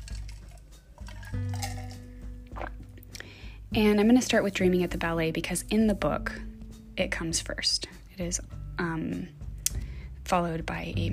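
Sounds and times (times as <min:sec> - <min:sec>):
person drinking water with liquid sloshing and gulping sips: 0:00.0 - 0:03.3
speech: 0:03.7 - 0:09.4, 0:10.3 - 0:11.1.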